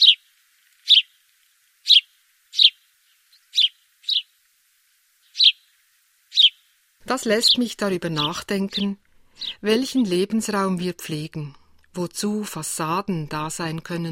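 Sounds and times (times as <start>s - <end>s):
house sparrows chirping: 0.0s - 1.2s, 1.8s - 4.4s, 5.2s - 5.7s, 6.3s - 10.3s
speech: 7.1s - 14.0s.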